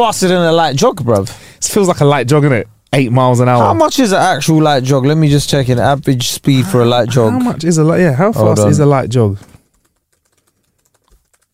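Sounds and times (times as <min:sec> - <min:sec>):
speech: 0:00.0 - 0:09.5
fast typing on a computer keyboard: 0:09.4 - 0:11.5.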